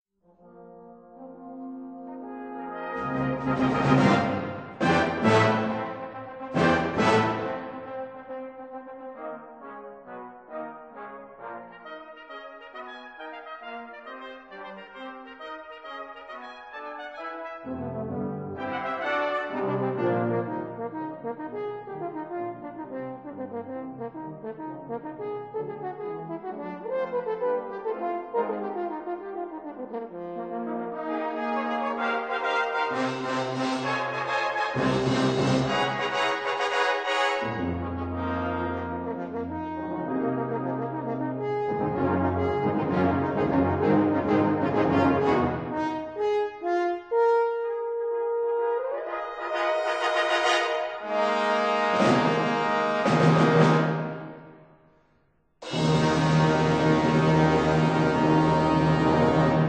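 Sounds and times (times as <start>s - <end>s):
horn concerto third movement: 0.3s - 54.6s, 55.6s - 59.6s.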